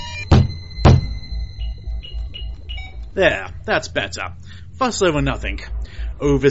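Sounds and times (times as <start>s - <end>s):
steady electronic tones and beeps: 0.0s - 4.0s
heavy dull thumps on a control console: 0.2s - 1.2s
speech: 3.2s - 6.5s.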